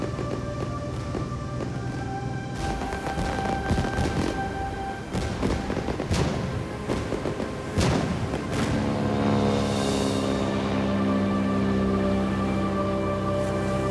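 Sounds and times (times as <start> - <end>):
fireworks bursting overhead in crackling booms: 0.0 - 10.3
sustained orchestral tone: 0.0 - 13.9.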